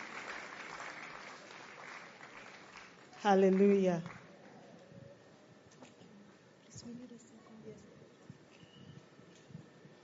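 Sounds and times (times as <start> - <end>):
audience clapping at a church women's fellowship event: 0.0 - 4.6
speech: 3.2 - 4.2.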